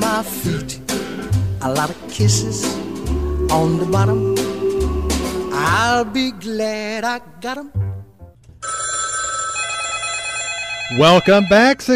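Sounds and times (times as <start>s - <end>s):
speech: 0.1s - 0.8s, 1.6s - 4.5s, 5.6s - 7.8s, 10.9s - 11.9s
several telephone bells ringing in an insurance office: 8.6s - 11.8s.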